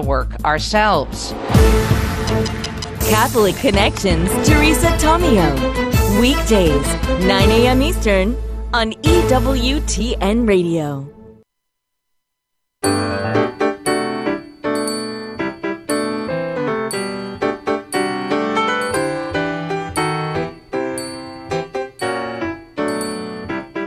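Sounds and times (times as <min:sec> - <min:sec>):
speech: 0:00.0 - 0:11.2
bright Christmassy musical jingle of little bells: 0:12.8 - 0:23.8.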